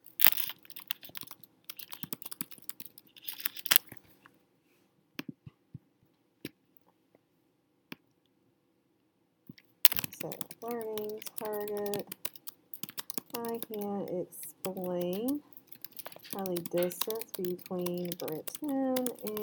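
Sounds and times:
typing on a computer keyboard: 0.2 - 3.8, 9.9 - 19.4
speech: 10.2 - 12.2, 13.4 - 15.5, 16.4 - 19.4.

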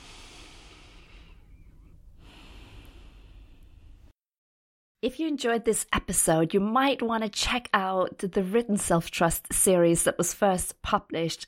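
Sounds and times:
person breathing slowly: 0.0 - 4.1
speech: 5.0 - 11.4.

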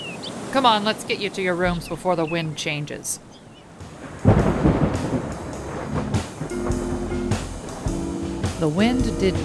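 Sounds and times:
speech: 0.6 - 3.3, 8.6 - 9.4
steady rain hissing during a summer thunderstorm: 3.7 - 9.4
summer thunderstorm thunder: 3.9 - 9.4.

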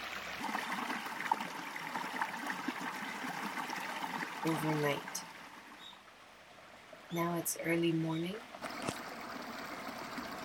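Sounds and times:
flowing river water babbling and trickling: 0.0 - 10.4
speech: 4.4 - 5.3, 7.1 - 8.5.

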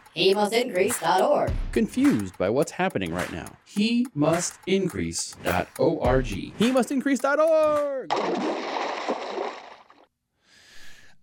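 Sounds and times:
speech: 0.2 - 8.9
heavy splash of something large dropped into water: 8.1 - 10.1
softer hissing slosh of water settling: 8.1 - 10.1.

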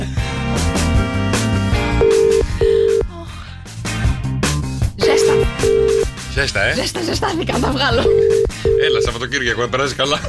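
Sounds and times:
dense loud music: 0.0 - 9.2
phone keypad beeps dialing a telephone number: 2.0 - 3.0, 8.1 - 9.2
speech: 6.4 - 10.2.

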